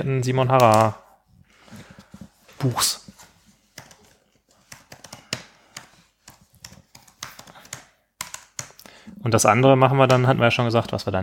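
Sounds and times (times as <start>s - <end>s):
speech: 0.0s - 1.0s, 2.6s - 3.1s, 9.2s - 11.2s
typing on a computer keyboard: 4.7s - 8.8s.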